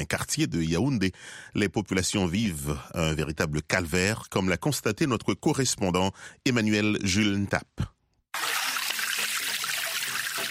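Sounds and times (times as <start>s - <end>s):
speech: 0.0s - 7.9s
water flowing from a developed spring used as a village water supply: 8.4s - 10.4s.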